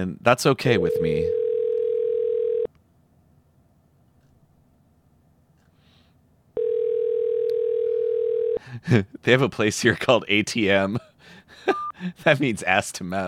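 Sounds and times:
speech: 0.0 - 1.4, 8.7 - 13.2
electronic ringback tone of an outgoing phone call: 0.9 - 2.7, 6.6 - 8.6.

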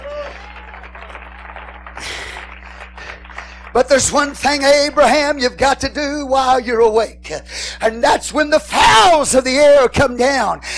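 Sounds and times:
audience clapping hands in praise: 0.0 - 5.4
low electrical hum: 0.0 - 10.7
speech: 3.8 - 10.7.

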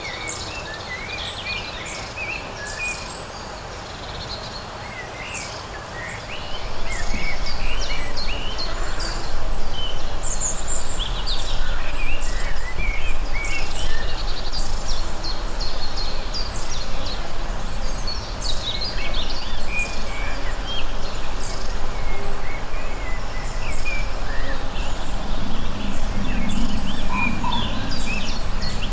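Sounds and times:
birds singing sweet melodies outdoors on a summer day: 0.0 - 28.9
steady low rumble: 6.4 - 28.9.

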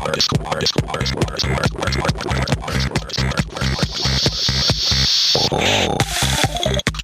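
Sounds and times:
voice-like vocal formant sound from a synthesizer: 0.0 - 4.6, 5.4 - 6.3
steady punchy beat of glitchy electronic track: 0.0 - 7.0
speech: 0.2 - 1.6
stuttering chopped synth textures from a MIDI-powered synthesizer: 2.0 - 6.9.

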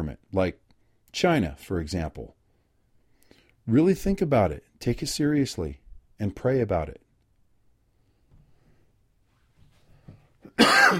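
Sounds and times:
speech: 0.0 - 2.4, 3.7 - 7.0, 10.6 - 10.9
quiet breathing: 2.4 - 3.7, 7.8 - 10.4
person coughing: 10.4 - 10.9.

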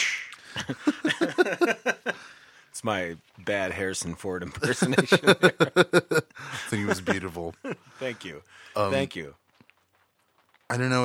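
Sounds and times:
voice imitating a whip crack: 0.0 - 0.4
laughter: 0.4 - 2.4, 4.5 - 8.4
speech: 0.6 - 1.7, 2.8 - 9.4, 10.7 - 11.0.

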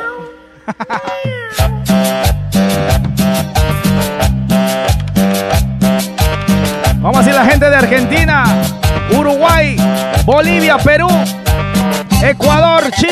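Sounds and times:
meow-like tones: 0.0 - 0.4, 1.0 - 1.9
cat meowing: 0.0 - 1.9
laughter: 0.6 - 1.4
loud steady musical beat with punchy bass: 1.2 - 13.1
speech: 10.3 - 11.4, 12.2 - 13.1.

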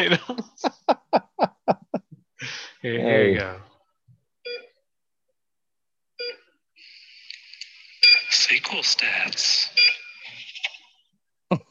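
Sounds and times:
speech: 0.0 - 0.8, 2.8 - 3.7, 8.6 - 10.0
laughter: 0.0 - 2.2
short bright electronic beeps in a theme jingle: 8.0 - 8.4, 9.7 - 10.3.

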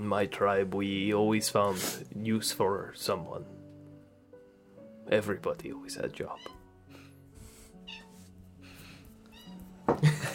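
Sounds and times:
speech: 0.0 - 3.6, 5.1 - 6.6
cat meowing: 6.3 - 6.6, 7.8 - 8.2, 9.2 - 9.8.

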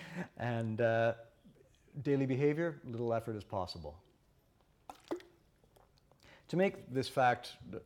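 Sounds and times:
speech: 0.2 - 1.3, 2.0 - 4.0, 6.5 - 7.8
person sipping water: 4.6 - 6.4.

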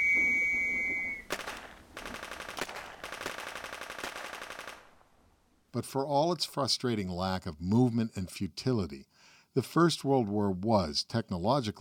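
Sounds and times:
First World War trench whistle blast: 0.0 - 1.3
rapid machine gun fire in rattling bursts: 1.3 - 5.0
speech: 5.8 - 11.7.

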